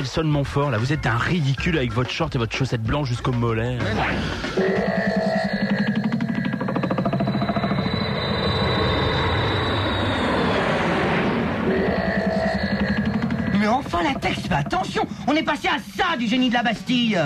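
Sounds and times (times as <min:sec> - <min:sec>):
speech: 0:00.0 - 0:05.0, 0:14.2 - 0:17.2
aircraft engine drone in flight passing the Génie de la Bastille: 0:04.2 - 0:15.9
high aircraft whine gliding downward: 0:04.6 - 0:14.8.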